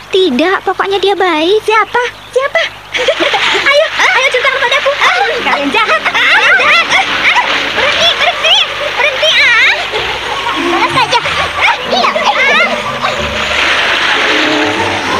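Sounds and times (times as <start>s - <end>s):
speech: 0.1s - 6.8s
people splashing water in a river: 2.7s - 15.1s
laughter: 2.9s - 15.1s
several voices squealing and shrieking playfully: 5.0s - 15.1s.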